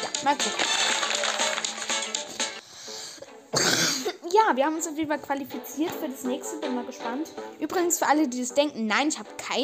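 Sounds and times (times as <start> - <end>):
speech: 0.2 - 1.3, 4.4 - 9.6
person coughing in a fast raspy burst: 3.5 - 4.3.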